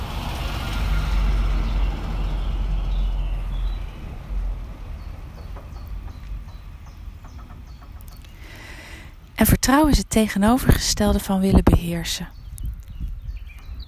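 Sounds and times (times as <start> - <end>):
truck driving past: 0.0 - 8.4
speech: 9.4 - 12.4.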